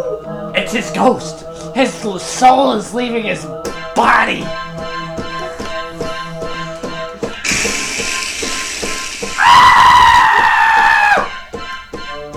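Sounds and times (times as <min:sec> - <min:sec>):
speech: 0:00.7 - 0:04.7
tonal sounds: 0:07.5 - 0:10.1
rushing hissy noise: 0:07.5 - 0:10.4
woman screaming: 0:09.4 - 0:11.3.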